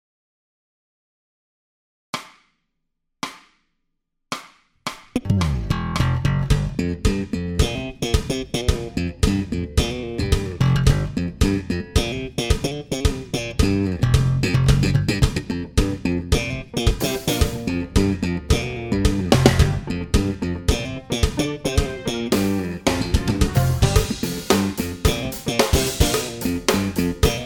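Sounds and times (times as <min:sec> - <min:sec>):
fast slap bass theme: 0:05.2 - 0:27.4.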